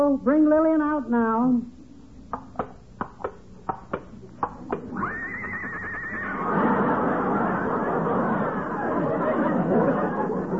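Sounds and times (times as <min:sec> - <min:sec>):
speech: 0:00.0 - 0:01.8
crowd laughing: 0:04.8 - 0:10.5
horse whinnying: 0:04.9 - 0:06.5.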